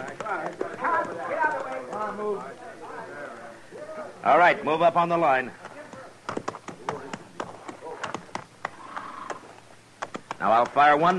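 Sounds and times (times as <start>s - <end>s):
horse hooves clopping in a Western scene: 0.0s - 2.5s, 5.6s - 11.1s
speech: 0.3s - 2.7s, 4.2s - 5.6s, 10.4s - 11.1s.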